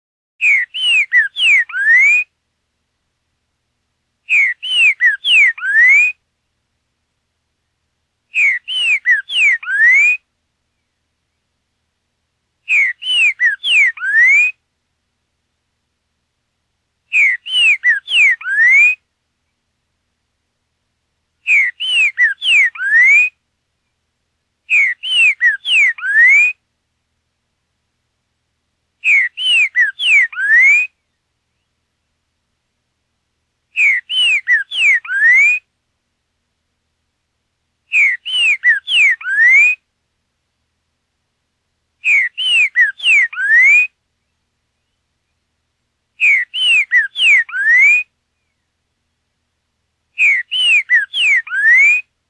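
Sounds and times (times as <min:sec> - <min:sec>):
Boiadeiro saffron-billed sparrow singing: 0:00.4 - 0:02.2, 0:04.3 - 0:06.1, 0:08.3 - 0:11.0, 0:12.7 - 0:14.5, 0:17.1 - 0:19.0, 0:21.4 - 0:23.3, 0:24.7 - 0:26.6, 0:29.0 - 0:31.7, 0:33.8 - 0:35.6, 0:37.9 - 0:39.8, 0:42.0 - 0:45.0, 0:46.2 - 0:48.7, 0:50.2 - 0:52.0.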